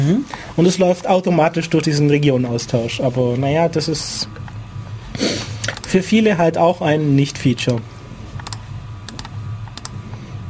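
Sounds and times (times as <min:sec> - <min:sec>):
speech: 0:00.0 - 0:04.4, 0:05.2 - 0:07.9
low steady hum: 0:00.0 - 0:10.4
computer clicking: 0:05.6 - 0:06.0, 0:07.6 - 0:10.0
computer keyboard typing: 0:08.4 - 0:10.0.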